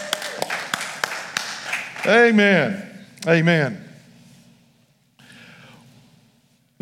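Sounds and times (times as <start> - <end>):
audience clapping hands in a steady rhythm: 0.0 - 2.4
speech: 2.0 - 3.8.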